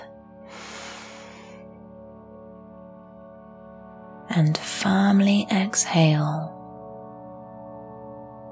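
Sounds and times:
soft steady musical drone: 0.0s - 8.5s
long deep airy inhale: 0.5s - 1.8s
speech: 4.4s - 6.6s.

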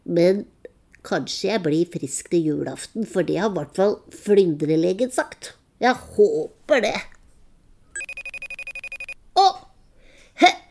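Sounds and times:
speech: 0.1s - 7.1s
telephone ringing in a rapid pulsing electronic trill: 8.0s - 9.2s.

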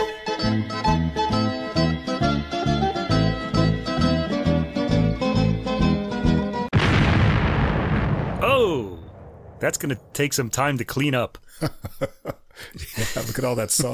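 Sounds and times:
bouncy musical passage: 0.0s - 6.7s
explosion sound effect: 6.7s - 10.7s
roaring crackling debris noise: 6.7s - 10.9s
speech: 9.6s - 13.9s
laughter: 11.5s - 13.9s.

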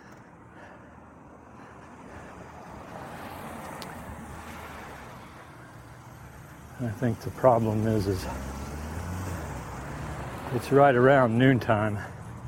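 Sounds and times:
steady road traffic roar: 0.0s - 12.4s
vehicle passing with tire and wind noise: 0.0s - 12.4s
speech: 6.8s - 8.5s, 10.5s - 12.2s.

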